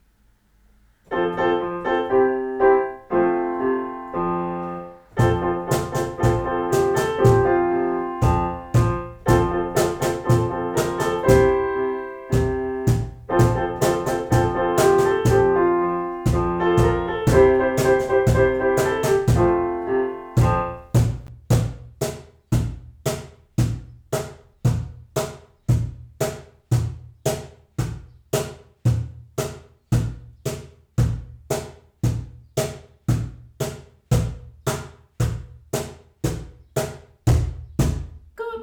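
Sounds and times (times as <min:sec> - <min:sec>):
piano: 0:01.1 - 0:21.3
cajon: 0:05.2 - 0:07.6, 0:08.2 - 0:11.7, 0:12.4 - 0:15.6, 0:16.3 - 0:19.6, 0:20.4 - 0:38.3.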